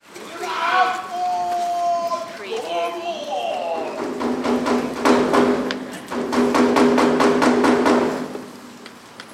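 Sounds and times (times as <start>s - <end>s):
male Kabuki storyteller narrating in Tokyo Japan: 0.2s - 4.1s
Kabuki theater drum in Tokyo Japan: 3.7s - 8.4s.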